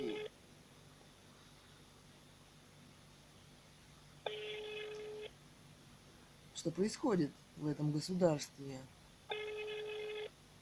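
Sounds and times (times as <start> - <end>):
electronic phone ringing tone of an unanswered call to a government number: 0.0 - 0.4, 4.3 - 5.3, 9.3 - 10.4
speech: 6.6 - 9.0.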